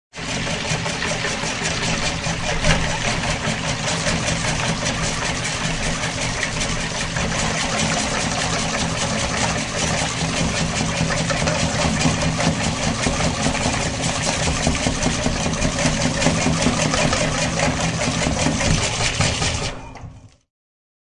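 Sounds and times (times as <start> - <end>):
mixing whipped cream: 0.1 - 20.4.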